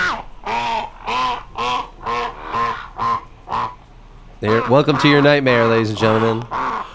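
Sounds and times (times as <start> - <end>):
slowed-down low harmonic duck quacks: 0.0 - 3.8, 4.4 - 5.4, 6.0 - 6.9
speech: 4.4 - 6.6.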